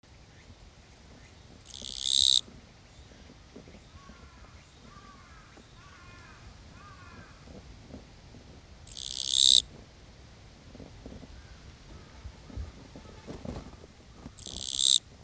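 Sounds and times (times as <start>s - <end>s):
kirigirisu katydid chirping: 1.6s - 2.4s, 8.9s - 9.7s, 14.4s - 15.0s.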